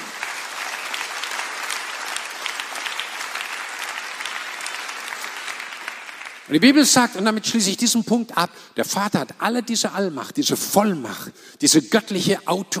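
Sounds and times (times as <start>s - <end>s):
audience applauding: 0.0s - 7.0s
speech: 6.5s - 12.7s.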